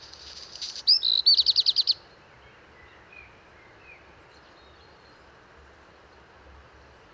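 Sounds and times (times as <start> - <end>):
black redstart singing atop a large lime tree in Drôme, France: 0.0 - 2.0.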